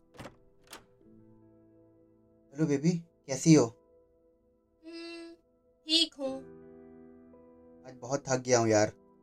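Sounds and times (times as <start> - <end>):
gate thunking open: 0.0 - 0.9
latch and door clunking: 0.0 - 1.0
speech: 2.6 - 3.8, 5.9 - 6.6, 7.9 - 9.0.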